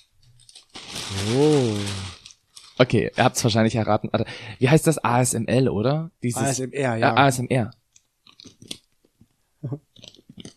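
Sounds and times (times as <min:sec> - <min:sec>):
crunching on potato chips: 0:00.4 - 0:02.8, 0:08.3 - 0:08.8
speech: 0:01.1 - 0:02.0, 0:02.8 - 0:07.8, 0:09.6 - 0:10.1.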